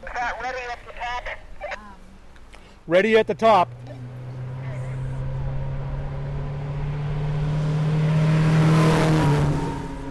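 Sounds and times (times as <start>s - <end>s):
speech: 2.9s - 3.8s
car engine revving and accelerating away at hill climb: 2.9s - 10.0s.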